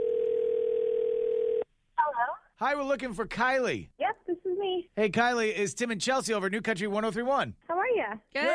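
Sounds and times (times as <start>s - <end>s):
telephone dial tone as a call is placed: 0.0s - 1.7s
speech: 2.6s - 8.5s.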